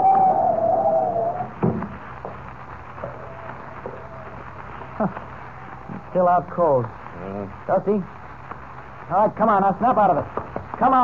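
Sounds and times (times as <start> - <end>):
howling wind of a blinding snowstorm: 0.0 - 6.6
speech: 6.2 - 8.2, 9.1 - 11.0.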